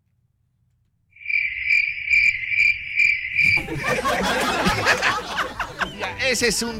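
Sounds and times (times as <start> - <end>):
cricket chirping in a high trill: 1.1 - 3.8
people chuckling: 3.4 - 6.2
people talking: 3.6 - 6.7.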